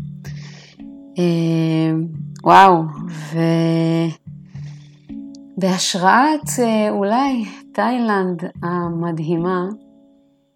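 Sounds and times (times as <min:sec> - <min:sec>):
crickets chirping on the island of Koh Phangan, Thailand: 0:00.0 - 0:01.2, 0:04.1 - 0:10.5
speech: 0:01.2 - 0:04.2, 0:05.6 - 0:09.8.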